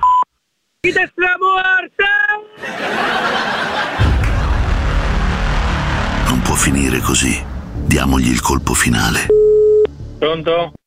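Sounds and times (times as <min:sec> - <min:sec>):
speech: 0:00.8 - 0:03.2, 0:06.5 - 0:09.4, 0:10.2 - 0:10.8
laughter: 0:02.6 - 0:04.8
broad rushing noise: 0:03.5 - 0:08.0
short steady electronic beep from a mobile network's voicemail service: 0:09.2 - 0:09.9.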